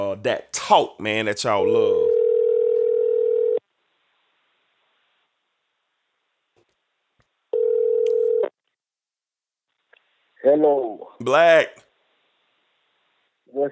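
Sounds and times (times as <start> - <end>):
speech: 0.1 - 2.1, 10.4 - 11.8, 13.5 - 13.7
phone call ringback tone: 2.0 - 3.6, 7.6 - 8.5.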